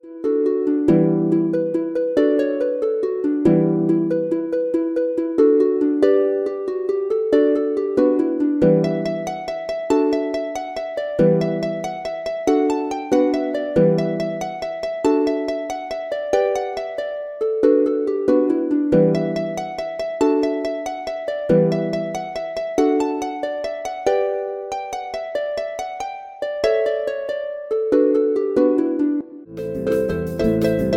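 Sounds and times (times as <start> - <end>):
Celtic harp playing a jig: 0.0 - 30.9.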